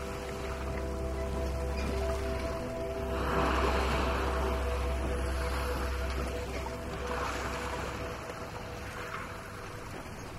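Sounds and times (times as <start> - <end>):
steady low rumble: 0.0 - 10.2
sea waves washing onto the shore: 0.0 - 10.3.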